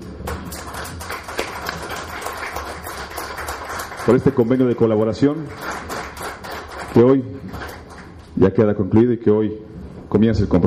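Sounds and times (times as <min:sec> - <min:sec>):
crowd applauding: 0:00.0 - 0:08.3
speech: 0:04.0 - 0:05.8, 0:07.0 - 0:07.7, 0:08.4 - 0:10.6.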